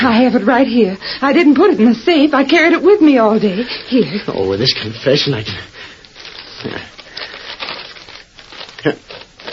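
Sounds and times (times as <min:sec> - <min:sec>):
speech: 0:00.0 - 0:05.7, 0:06.6 - 0:06.9, 0:08.8 - 0:09.2
envelope paper rustling and crinkling: 0:06.0 - 0:09.5
paper envelope ripped open: 0:06.0 - 0:09.5.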